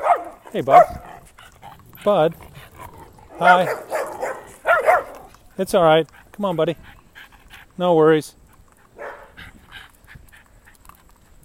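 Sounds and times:
dog barking: 0.0s - 1.1s, 3.3s - 5.3s, 9.0s - 9.4s
speech: 0.5s - 1.1s, 2.0s - 2.5s, 3.4s - 3.9s, 5.6s - 7.0s, 7.8s - 8.4s.

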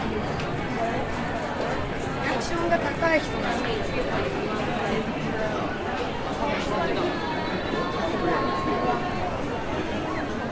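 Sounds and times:
murmur of many overlapping voices in a busy Tokyo public space: 0.0s - 10.5s
brief high tone: 7.4s - 9.4s.

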